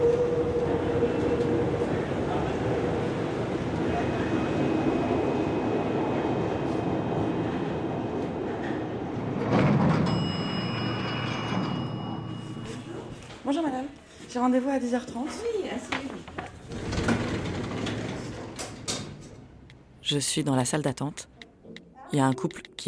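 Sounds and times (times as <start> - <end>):
metro train rumbling with a low hum: 0.0 - 13.2, 16.6 - 20.8
speech: 14.4 - 15.9, 20.1 - 21.4, 22.1 - 22.8.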